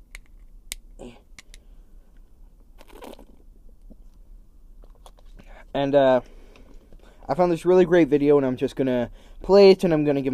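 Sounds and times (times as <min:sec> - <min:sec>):
speech: 0:01.0 - 0:01.2, 0:05.7 - 0:06.4, 0:07.3 - 0:10.3
sips and swallows of water: 0:02.8 - 0:03.4.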